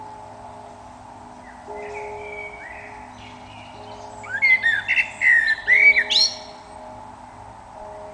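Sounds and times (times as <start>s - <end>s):
constant low hum: 0.0s - 8.1s
Eurasian blackbird Turdus merula whistling fluty phrase with scratchy flourish: 1.5s - 6.6s.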